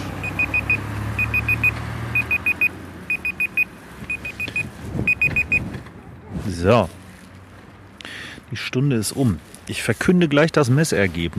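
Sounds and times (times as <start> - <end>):
loud rapid electronic beeping from a mobile phone: 0.2 - 5.7
speech: 6.6 - 7.0, 8.5 - 11.3.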